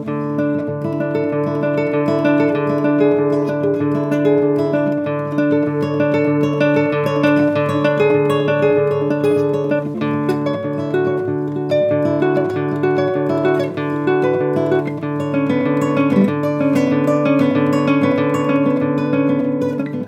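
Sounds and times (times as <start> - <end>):
classical guitar: 0.0 - 20.0.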